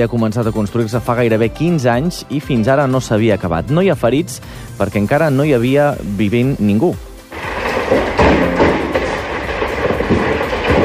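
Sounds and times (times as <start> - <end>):
speech: 0.0 - 7.1
dull irregular thumps and cracks from a building fire: 7.1 - 10.8
roar of flames from an apartment building complex fire in Ordino, Andorra: 7.3 - 10.8.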